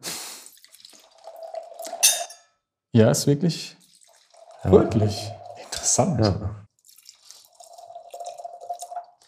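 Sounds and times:
wine pouring into a glass: 0.5s - 2.4s, 3.7s - 9.2s
bright glassy clink and splash: 1.8s - 2.6s
speech: 2.9s - 3.8s, 4.6s - 6.7s.

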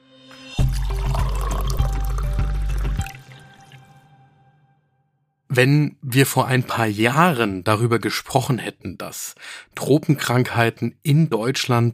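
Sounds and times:
cool water poured steadily into a glass: 0.6s - 4.1s
speech: 5.6s - 11.9s.

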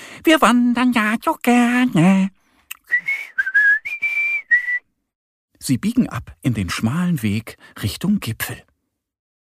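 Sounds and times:
speech: 0.2s - 2.4s, 5.6s - 8.7s
person whistling a short cheerful tune: 2.8s - 4.9s.

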